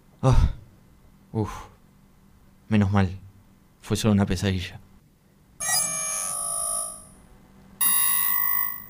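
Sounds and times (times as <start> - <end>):
speech: 0.2 - 0.6, 1.3 - 1.7, 2.7 - 3.2, 3.8 - 4.8
alarm clock ringing in electronic bursts: 5.6 - 7.2, 7.8 - 8.8.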